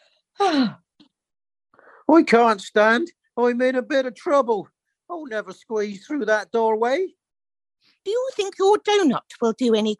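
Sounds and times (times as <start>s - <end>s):
faint breath: 1.7s - 2.1s
speech: 2.1s - 7.2s, 8.0s - 9.9s.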